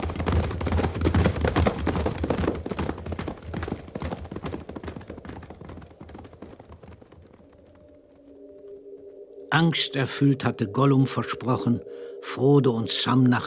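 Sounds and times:
horses galloping in a radio drama: 0.0s - 8.4s
speech: 9.5s - 13.4s.

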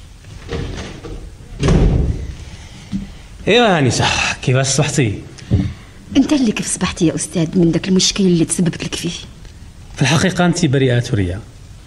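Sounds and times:
noisy background: 0.0s - 11.8s
heavy door shutting with a thud and low rumble: 0.4s - 2.4s
speech: 3.4s - 9.4s, 10.0s - 11.5s.

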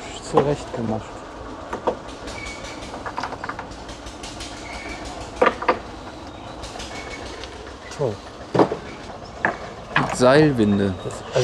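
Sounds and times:
railway train running with a low continuous rumble: 0.0s - 11.4s
speech: 0.3s - 1.2s, 8.0s - 8.3s, 10.2s - 11.4s
railway train clickety-clack wheel knocks: 1.7s - 5.9s, 6.6s - 10.9s.

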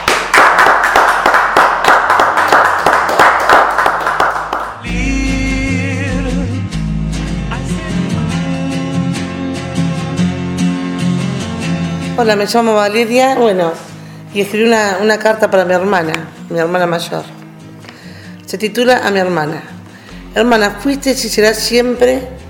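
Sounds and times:
audience applause at a recital of poems and letters: 0.0s - 4.8s
music: 0.0s - 22.4s
speech: 12.2s - 17.4s, 18.5s - 19.8s, 20.4s - 22.4s.

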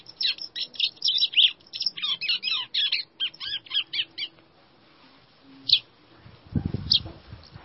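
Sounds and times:
White-throated seedeater singing: 0.0s - 4.4s, 5.6s - 5.9s, 6.6s - 7.1s.

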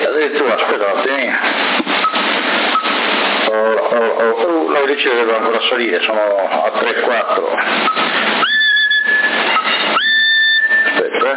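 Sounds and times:
CB radio channel static: 0.0s - 11.3s
speech: 4.9s - 8.3s
person whistling into a CB radio microphone: 7.9s - 11.3s.

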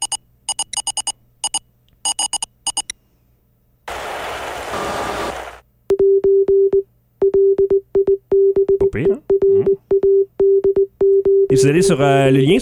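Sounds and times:
Morse code message over radio: 0.0s - 2.9s, 5.9s - 11.7s
speech: 9.0s - 9.3s, 11.6s - 12.6s.

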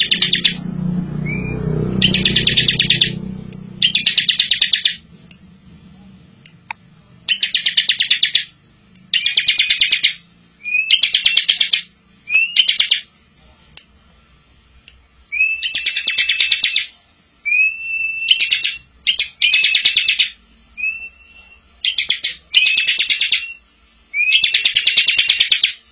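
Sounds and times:
bar-winged prinia song with buzzy rattling trills and rising whistles: 0.0s - 0.6s, 1.2s - 3.2s, 3.8s - 5.0s, 7.3s - 13.1s, 15.3s - 25.9s.

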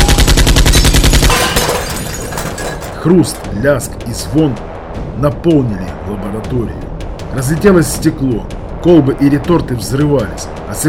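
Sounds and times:
long burst of automatic gunfire around a doorway inside a laboratory: 0.0s - 1.6s
speech: 3.0s - 10.8s.

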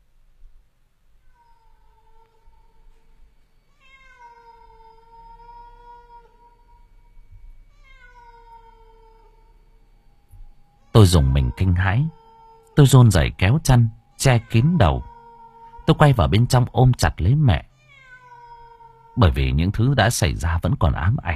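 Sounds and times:
low steady hum: 0.0s - 21.3s
cat meowing mournfully at night: 1.2s - 3.0s, 3.7s - 9.6s, 10.8s - 16.5s, 17.7s - 19.4s
speech: 11.0s - 12.2s, 12.8s - 15.1s, 15.9s - 17.7s, 19.2s - 21.3s.

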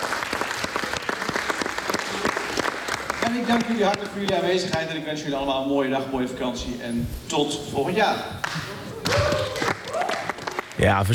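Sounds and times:
audience applause at a gathering in a provincial government building: 0.0s - 4.2s, 8.4s - 11.1s
speech: 3.3s - 9.4s, 10.8s - 11.1s.

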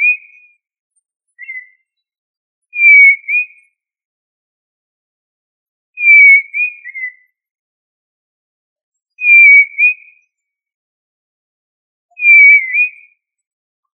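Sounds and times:
tinamou whistled calls: 1.4s - 1.7s, 2.8s - 3.6s, 6.0s - 7.2s, 9.2s - 10.0s, 12.2s - 13.1s.

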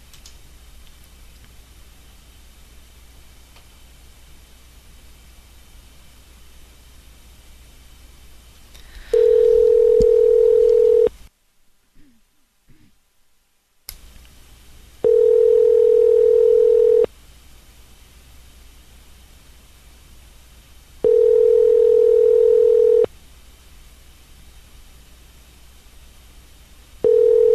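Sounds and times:
telephone call ringing tones: 9.1s - 11.1s, 15.0s - 17.1s, 21.0s - 23.1s, 27.0s - 27.5s.

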